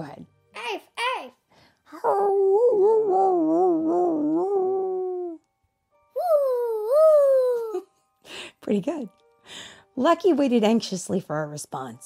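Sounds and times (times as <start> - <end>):
speech: 0.0 - 0.4, 8.7 - 12.0
person imitating a dog howling: 1.9 - 5.4, 6.2 - 7.8.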